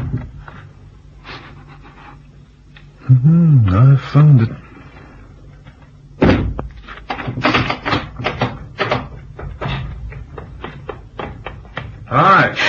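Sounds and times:
speech: 3.1s - 4.6s
heavy thud of cabin door: 6.2s - 9.9s.

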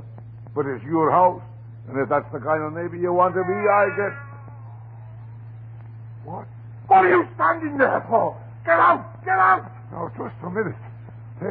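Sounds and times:
steady low electrical hum: 0.0s - 11.4s
speech: 0.6s - 4.2s, 6.3s - 11.4s
cat letting out a drawn-out wavering meow: 3.2s - 5.0s.

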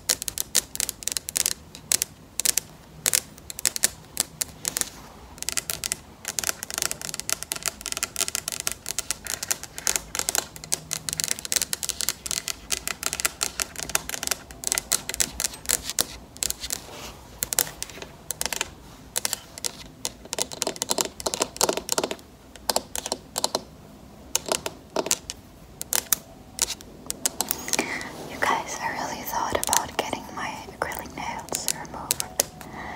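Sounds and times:
acrylic nails tapping: 0.0s - 16.8s, 17.4s - 23.7s, 24.3s - 32.8s
soft breathy sound: 27.4s - 32.9s.

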